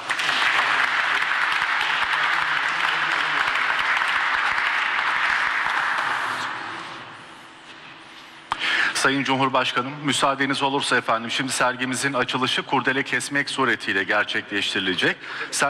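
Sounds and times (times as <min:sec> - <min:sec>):
audience applause at an exhibition opening ceremony: 0:00.0 - 0:06.7
speech: 0:09.0 - 0:15.6.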